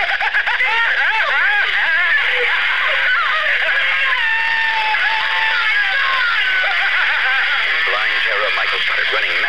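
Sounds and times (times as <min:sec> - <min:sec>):
laughter: 0:00.0 - 0:09.4
woman screaming in terror: 0:00.5 - 0:07.4.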